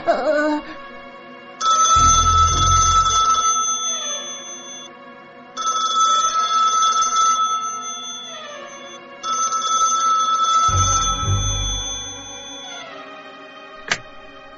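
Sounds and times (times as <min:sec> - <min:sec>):
phone ringtone with bright melodic tone: 0:01.6 - 0:04.9, 0:05.6 - 0:13.0
low rumble: 0:02.0 - 0:03.4, 0:10.7 - 0:12.6.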